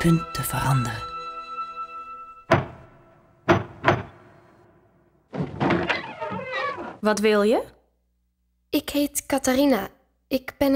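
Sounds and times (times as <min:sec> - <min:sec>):
speech: 0:00.0 - 0:01.1, 0:07.0 - 0:07.8, 0:08.7 - 0:10.7
heavy lion-head door knocker knocking on a wooden door: 0:02.5 - 0:02.9, 0:03.5 - 0:04.3
wooden door clattering as it stirs: 0:02.5 - 0:04.5, 0:05.3 - 0:07.0.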